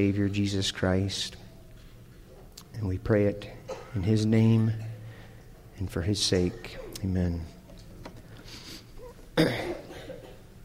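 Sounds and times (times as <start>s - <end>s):
speech: 0.0s - 1.4s, 2.8s - 4.9s, 5.8s - 7.6s, 9.4s - 9.6s
faint room noise: 0.0s - 10.6s
person with allergies coughing: 3.6s - 5.2s, 6.4s - 7.0s, 9.4s - 10.5s
rough throat clearing: 6.4s - 7.1s, 9.0s - 10.5s.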